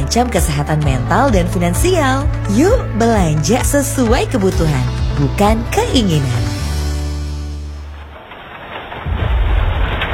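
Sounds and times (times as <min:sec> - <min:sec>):
low rumble: 0:00.0 - 0:10.1
speech: 0:00.1 - 0:06.5
rain falling: 0:02.4 - 0:10.1.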